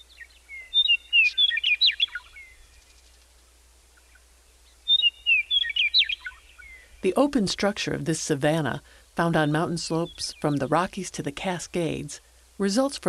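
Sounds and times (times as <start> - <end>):
Western Meadowlark singing in open grassland below ponderosa pine savanna: 0.0 - 3.1, 4.0 - 13.0
speech: 7.0 - 13.0.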